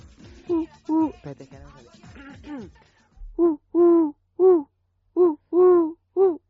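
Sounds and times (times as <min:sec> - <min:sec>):
person imitating a perched collared dove call: 0:00.5 - 0:01.1, 0:03.4 - 0:06.4
speech: 0:00.6 - 0:03.5.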